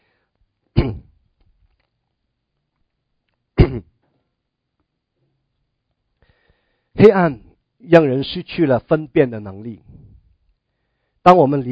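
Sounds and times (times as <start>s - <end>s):
person coughing from a cold: 0.8s - 1.2s, 3.6s - 4.0s
speech: 7.0s - 10.0s, 11.2s - 11.7s.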